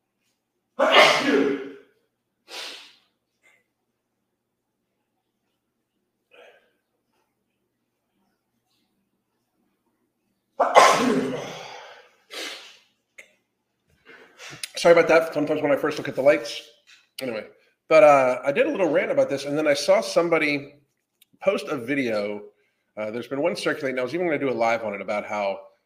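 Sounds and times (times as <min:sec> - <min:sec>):
person sneezing: 0:00.8 - 0:01.9, 0:02.5 - 0:03.0, 0:10.6 - 0:12.8
breathy sniff: 0:02.5 - 0:03.1, 0:11.4 - 0:12.8, 0:14.1 - 0:14.7
speech: 0:14.8 - 0:20.8, 0:21.4 - 0:25.7.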